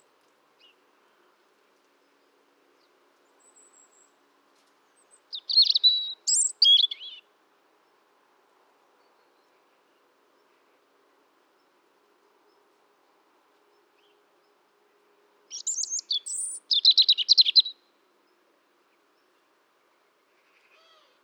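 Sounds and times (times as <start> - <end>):
European robin singing: 5.1 - 7.3, 15.5 - 17.8.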